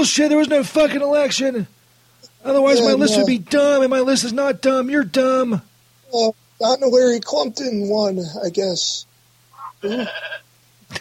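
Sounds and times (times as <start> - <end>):
speech: 0.0 - 1.8, 2.4 - 9.1, 9.8 - 10.9
steady low hum: 0.0 - 10.9
goat bleating: 9.6 - 10.4.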